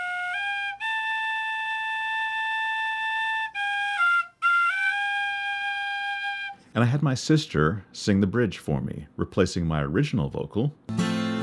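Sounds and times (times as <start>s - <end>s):
penny whistle playing a slow simple melody: 0.0s - 6.7s
speech: 6.8s - 11.0s.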